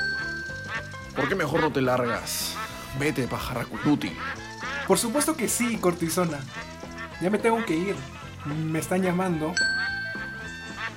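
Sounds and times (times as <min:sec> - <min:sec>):
ducks quacking: 0:00.0 - 0:10.9
speech: 0:01.2 - 0:09.8.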